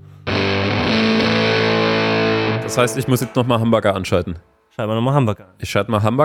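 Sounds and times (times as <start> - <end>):
distorted electric guitar chord through an effects pedal: 0.0 - 3.7
speech: 2.8 - 6.2.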